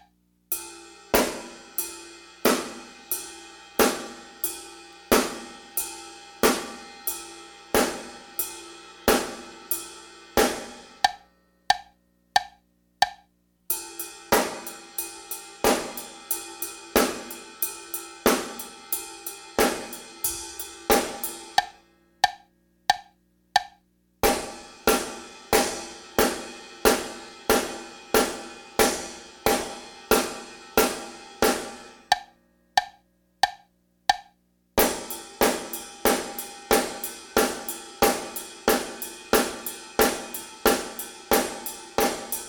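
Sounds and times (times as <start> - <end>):
ride cymbal: 0.5 - 12.0, 13.7 - 22.5, 24.2 - 32.3, 34.8 - 42.4
snare drum: 2.4 - 3.1, 3.8 - 4.3, 5.1 - 5.6, 6.4 - 7.0, 9.1 - 11.2, 13.8 - 22.4, 24.2 - 32.3, 34.8 - 42.4.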